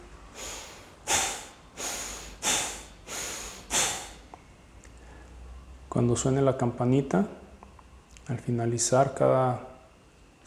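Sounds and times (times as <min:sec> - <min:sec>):
sharp forceful exhale during a breathing meditation: 0:00.3 - 0:04.3
deep inhale during a breathing meditation: 0:00.3 - 0:05.6
speech: 0:06.0 - 0:07.4, 0:08.3 - 0:09.7.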